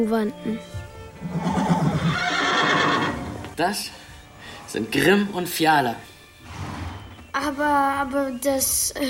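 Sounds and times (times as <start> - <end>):
speech: 0.0 - 1.8, 3.6 - 4.0, 4.7 - 6.1, 7.4 - 9.0
horse whinnying in a horse stable: 1.2 - 3.6, 6.4 - 7.2.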